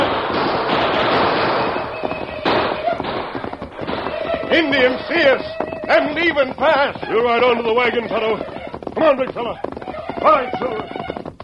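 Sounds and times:
gunfire in a radio drama Western: 0.0s - 6.4s
speech: 4.6s - 11.0s.

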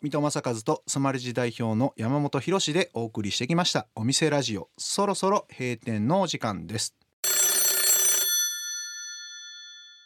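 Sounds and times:
speech: 0.0s - 7.4s
telephone bell ringing: 7.2s - 10.0s.

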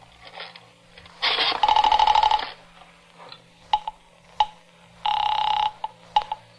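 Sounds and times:
telephone buzzing tone: 1.3s - 2.7s, 3.7s - 6.5s.

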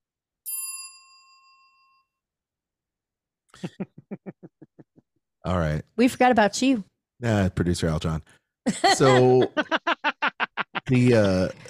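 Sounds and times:
notification bell ding: 0.5s - 2.1s
speech: 3.6s - 4.4s, 5.5s - 9.8s, 10.9s - 11.6s
laughter: 3.6s - 5.0s, 8.7s - 11.6s.

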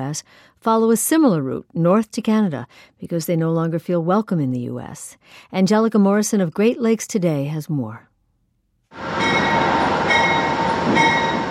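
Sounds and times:
speech: 0.0s - 8.1s, 10.8s - 11.3s
faint high metallic tones from train wheels: 9.0s - 11.4s
passenger train pulling into station: 9.0s - 11.4s.

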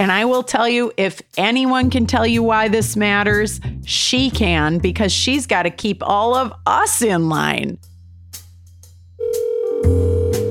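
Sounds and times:
speech: 0.0s - 7.9s
electronic ring tone of an outgoing phone call: 9.2s - 10.4s.

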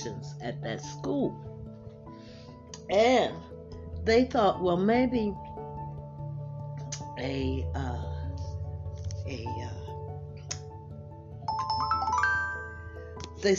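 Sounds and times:
speech: 0.0s - 1.6s, 2.9s - 5.5s, 7.2s - 8.1s, 9.3s - 9.8s
phone message notification chime: 11.5s - 13.2s.

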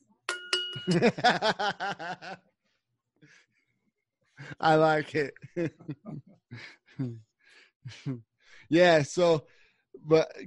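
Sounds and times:
small bell ringing: 0.3s - 1.1s
speech: 0.8s - 2.5s, 4.5s - 10.4s
laughter: 0.9s - 2.4s, 4.4s - 7.2s.

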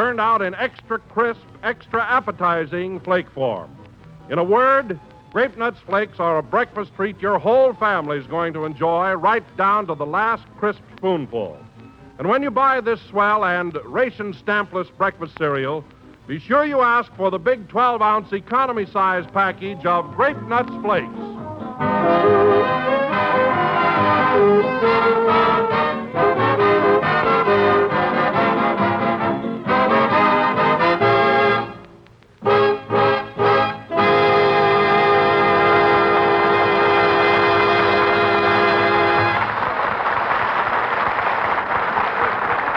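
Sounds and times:
speech: 0.0s - 22.8s
orchestra playing a lively tune: 20.0s - 31.8s, 32.4s - 39.5s
applause: 39.1s - 42.7s.

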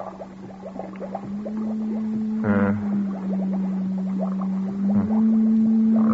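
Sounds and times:
encephalograph machine droning with steady electronic hum: 0.0s - 6.1s
loud pulsing burst of an encephalograph machine: 1.4s - 6.1s.

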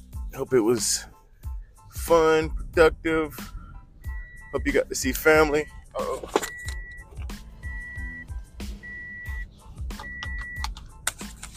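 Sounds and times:
low rumble of road and engine noise: 0.0s - 11.5s
speech: 0.4s - 1.1s, 2.0s - 3.5s, 4.5s - 6.4s
Toyota Corolla warning beep inside the cabin: 3.7s - 10.7s.

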